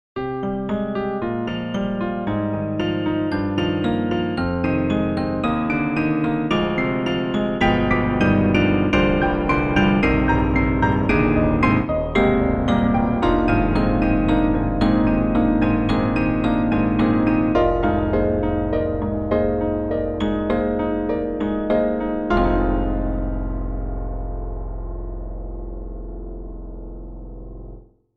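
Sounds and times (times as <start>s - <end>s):
broken piano played with a gentle touch: 0.2s - 27.9s.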